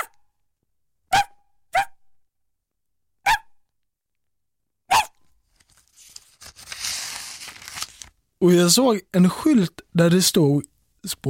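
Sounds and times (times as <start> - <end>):
person imitating a dog's bark in a crowded train station: 0.0 - 0.2, 1.1 - 2.0, 3.2 - 3.6, 4.9 - 5.2
rustling and crinkling noise: 5.4 - 8.2
speech: 8.4 - 11.2.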